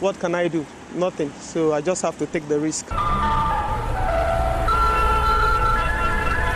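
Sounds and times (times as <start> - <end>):
speech: 0.0 - 3.8
busy road traffic engine rumble: 0.0 - 6.5
sustained horn-like tones: 3.0 - 6.5.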